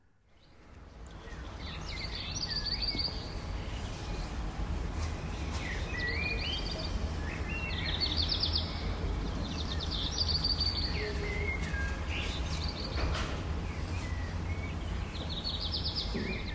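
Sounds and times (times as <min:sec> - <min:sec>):
birds singing and chirping at dawn: 0:00.4 - 0:16.5
steady low rumble of distant traffic: 0:00.5 - 0:16.5.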